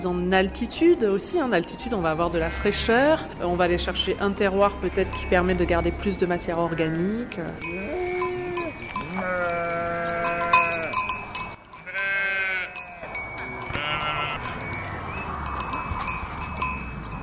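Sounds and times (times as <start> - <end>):
speech: 0.0 - 8.0
sheep of French breeds bleating: 2.4 - 2.9, 6.8 - 11.0, 11.8 - 14.6
faint bells tinkling: 2.8 - 17.2.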